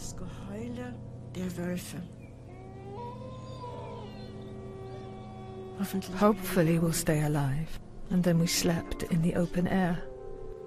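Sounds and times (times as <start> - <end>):
low rumble: 0.0 - 10.6
speech: 0.6 - 2.2, 5.8 - 10.1
wolves howling: 2.2 - 7.9.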